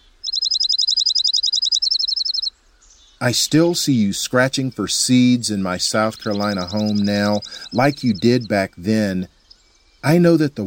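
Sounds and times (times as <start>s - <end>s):
dark-eyed junco singing a rapid trill of high chirps: 0.0s - 10.6s
speech: 3.2s - 9.4s, 10.0s - 10.6s.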